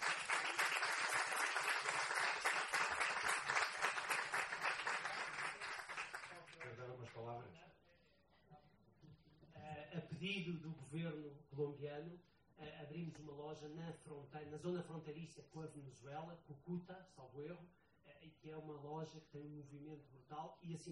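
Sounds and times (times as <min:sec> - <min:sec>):
crowd applause: 0:00.0 - 0:06.8
speech: 0:10.2 - 0:20.8.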